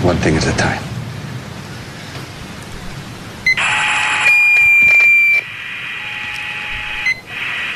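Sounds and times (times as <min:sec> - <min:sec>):
constant buzzing hum: 0:02.2 - 0:07.7
steady electronic tone with high-pitched harmonic whines: 0:03.4 - 0:07.7.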